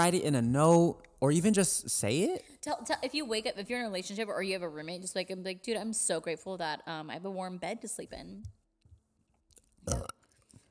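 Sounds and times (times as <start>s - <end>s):
speech: 0.0s - 8.6s, 9.8s - 10.2s
short loud forced burp: 9.8s - 10.3s.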